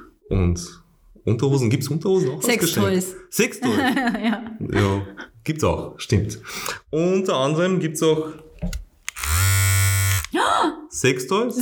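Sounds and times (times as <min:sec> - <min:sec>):
speech: 0:00.3 - 0:08.8, 0:10.6 - 0:11.6
laughter: 0:03.6 - 0:05.3
electric razor buzzing: 0:09.1 - 0:10.4.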